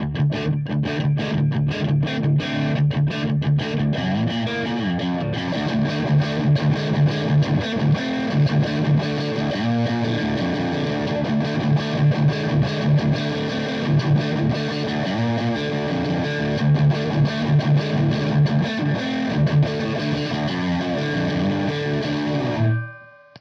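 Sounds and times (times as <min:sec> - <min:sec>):
Tube Screamer distortion pedal gain channel: 0:00.0 - 0:23.4.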